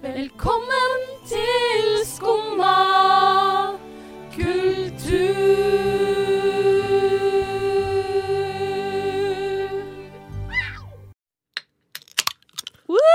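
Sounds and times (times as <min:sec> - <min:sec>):
sustained music: 0:00.1 - 0:11.1
soda cans cracking open with sharp pops and fizzy clicks: 0:11.9 - 0:12.8.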